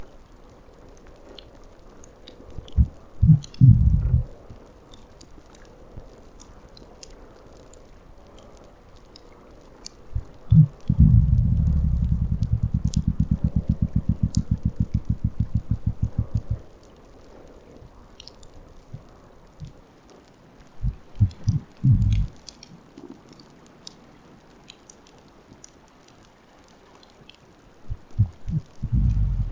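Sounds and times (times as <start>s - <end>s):
red grouper pulses: 2.6s - 4.4s, 10.2s - 16.7s, 20.8s - 22.4s, 27.9s - 29.5s.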